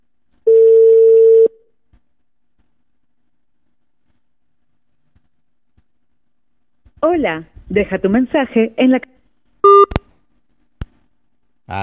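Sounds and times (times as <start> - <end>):
ringback tone of an outgoing telephone call: 0.5 - 1.5
speech: 7.2 - 9.1.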